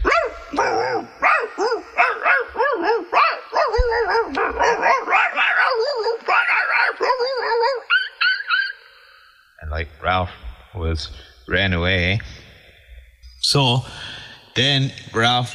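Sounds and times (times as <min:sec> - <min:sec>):
several dogs barking, yipping and whining in a dog fight: 0:00.0 - 0:09.0
speech: 0:10.9 - 0:12.4, 0:13.5 - 0:14.0, 0:14.6 - 0:15.5.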